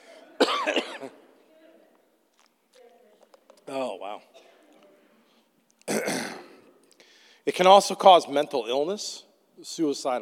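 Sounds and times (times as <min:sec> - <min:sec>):
person coughing: 0:00.0 - 0:01.2, 0:05.9 - 0:06.7
speech: 0:00.6 - 0:01.2, 0:07.6 - 0:10.1.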